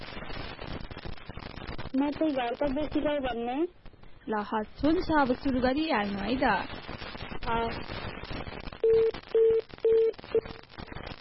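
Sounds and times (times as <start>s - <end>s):
speech: 2.0s - 6.9s, 7.5s - 8.0s, 8.9s - 9.6s
phone line tone beeps after a call is cut off: 8.8s - 10.6s.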